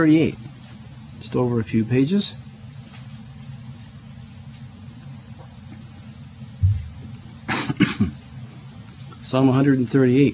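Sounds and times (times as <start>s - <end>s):
speech: 0.0s - 0.4s, 1.2s - 2.5s, 9.3s - 10.3s
man with a lingering winter cough coughing: 7.5s - 8.2s.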